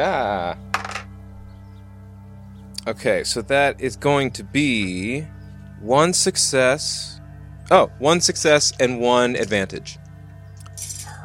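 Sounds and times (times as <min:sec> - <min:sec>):
speech: 0:00.0 - 0:00.7, 0:02.9 - 0:10.0
dice tumbling across a tabletop: 0:00.7 - 0:01.1.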